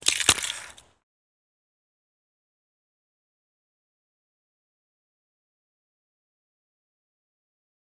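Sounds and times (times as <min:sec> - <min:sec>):
ice attack: 0:00.0 - 0:00.9.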